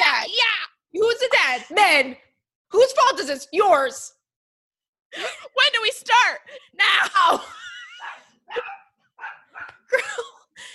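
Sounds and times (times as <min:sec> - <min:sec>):
speech: 0:01.5 - 0:04.2, 0:05.1 - 0:08.8
dogs in attack mode barking: 0:07.9 - 0:09.9.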